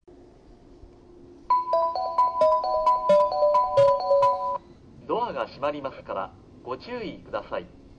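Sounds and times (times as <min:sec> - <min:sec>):
train station departure melody: 0:01.4 - 0:04.7.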